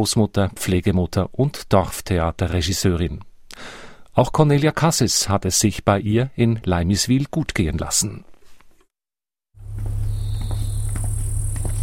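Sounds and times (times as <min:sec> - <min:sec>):
speech: 0:00.0 - 0:08.3
crickets chirping: 0:09.7 - 0:11.8.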